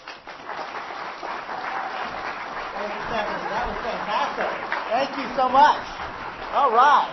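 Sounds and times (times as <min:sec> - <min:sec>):
audience applause of many hands: 0:00.0 - 0:07.1
speech: 0:04.4 - 0:05.9, 0:06.5 - 0:07.1.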